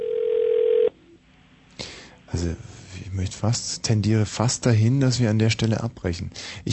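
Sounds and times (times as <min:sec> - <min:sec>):
telephone ringback tone: 0:00.0 - 0:00.9
speech: 0:02.3 - 0:06.7.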